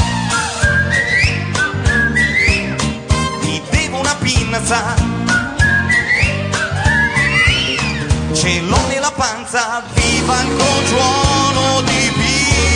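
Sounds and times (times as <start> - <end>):
person whistling a bright looping melody: 0.0 - 3.7, 5.0 - 8.0
steady thumping beat with low tones: 0.0 - 9.0, 10.0 - 12.7
backing instruments: 0.0 - 12.7.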